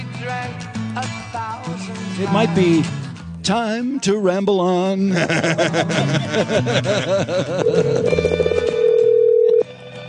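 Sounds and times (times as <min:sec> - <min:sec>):
speech: 0:00.2 - 0:08.2
laughter: 0:05.0 - 0:08.4
phone ringing tone on an outgoing call: 0:07.6 - 0:09.7.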